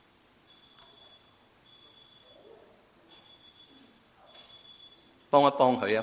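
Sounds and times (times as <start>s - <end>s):
faint electronic beeping in short bursts: 0.5s - 5.3s
speech: 5.3s - 6.0s.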